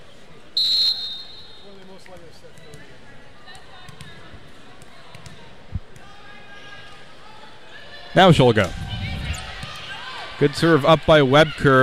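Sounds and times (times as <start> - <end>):
referee's whistle blast: 0.6 - 1.9
speech: 2.1 - 3.1, 8.2 - 8.8, 10.4 - 11.8.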